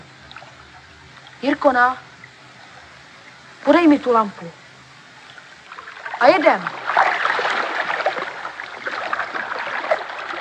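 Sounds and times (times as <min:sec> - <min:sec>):
speech: 0:01.4 - 0:02.1, 0:03.6 - 0:04.6, 0:06.2 - 0:06.8
boat moving through icy water among large chunks of ice: 0:06.1 - 0:10.3.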